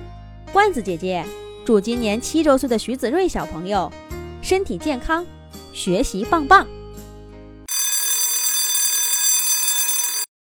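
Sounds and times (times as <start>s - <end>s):
speech: 0.5s - 6.8s
fire station fire alarm bell ringing: 7.7s - 10.3s.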